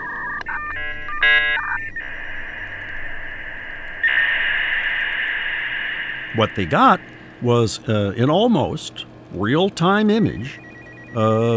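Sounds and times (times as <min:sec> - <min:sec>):
dial-up modem handshake tones over a phone line: 0:00.0 - 0:04.3, 0:10.3 - 0:11.5
static crackle on a phone line: 0:00.0 - 0:11.0
speech: 0:06.4 - 0:11.5.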